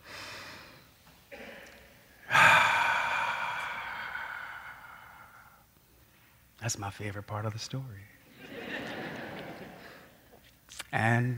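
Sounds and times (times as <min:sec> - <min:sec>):
deep breathing: 0:00.0 - 0:01.0, 0:02.2 - 0:06.4
long loud sighing exhale: 0:02.3 - 0:05.6
speech: 0:06.7 - 0:08.2, 0:10.9 - 0:11.3
laughter: 0:08.4 - 0:10.1.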